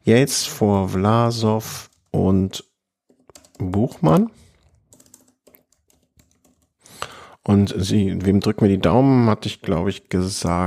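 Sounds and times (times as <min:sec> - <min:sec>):
speech: 0:00.0 - 0:02.7, 0:03.6 - 0:04.4, 0:07.4 - 0:10.6
typing on a computer keyboard while writing show notes: 0:03.1 - 0:03.8, 0:04.6 - 0:06.8.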